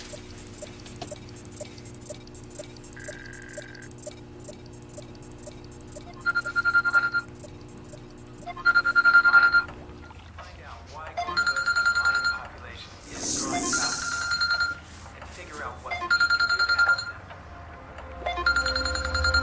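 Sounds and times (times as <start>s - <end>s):
telephone ringing in electronic bursts: 0.0s - 9.7s, 11.2s - 12.5s, 13.7s - 14.9s, 15.9s - 17.3s, 18.2s - 19.4s
faint hum: 0.0s - 19.4s.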